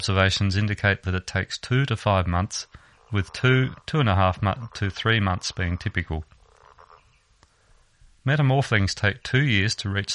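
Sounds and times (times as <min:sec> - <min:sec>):
speech: 0:00.0 - 0:06.4, 0:08.2 - 0:10.1
frog croaking with pulsed rattling croaks: 0:02.8 - 0:07.3.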